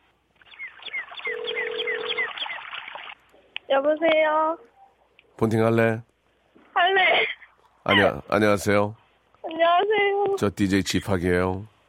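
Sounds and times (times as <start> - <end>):
steady telephone ringback tone while placing call: 1.2 - 2.4
speech: 3.7 - 4.7, 5.4 - 6.1, 7.9 - 9.0, 9.6 - 11.7.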